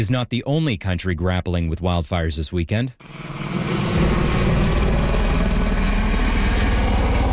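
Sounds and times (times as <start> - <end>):
speech: 0.0 - 3.4
helicopter engine roar: 3.0 - 7.3
helicopter rotor thumping: 3.0 - 7.3.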